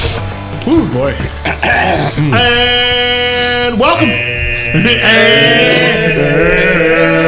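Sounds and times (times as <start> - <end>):
speech: 0.7 - 7.2
throat singing: 1.4 - 7.2.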